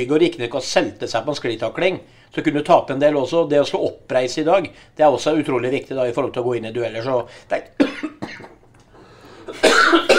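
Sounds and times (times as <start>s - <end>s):
speech: 0.0s - 8.6s, 9.5s - 10.1s
person coughing: 7.8s - 8.6s, 9.5s - 10.1s.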